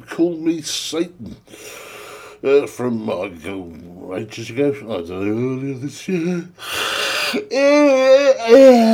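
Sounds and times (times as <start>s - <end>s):
speech: 0.2s - 8.9s
person yawning: 7.3s - 8.9s.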